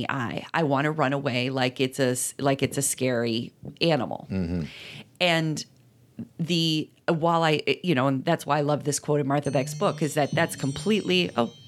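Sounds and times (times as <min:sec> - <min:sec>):
speech: 0:00.0 - 0:11.6
steady high-pitched electronic alarm tone: 0:09.4 - 0:11.6.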